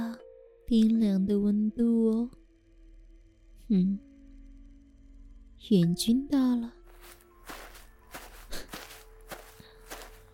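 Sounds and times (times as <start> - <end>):
speech: 0.7 - 2.4, 3.7 - 4.1, 5.6 - 6.8
footsteps at a walking pace: 6.9 - 10.3.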